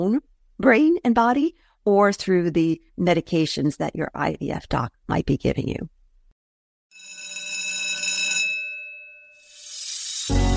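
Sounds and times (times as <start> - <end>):
speech: 0.0 - 5.9
bell ringing: 6.9 - 10.4.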